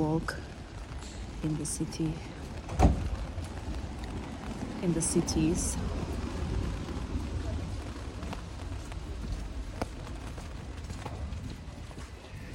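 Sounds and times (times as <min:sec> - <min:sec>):
rain falling outdoors in a city: 0:00.0 - 0:12.5
speech: 0:00.2 - 0:00.5, 0:01.4 - 0:02.9, 0:04.8 - 0:06.0.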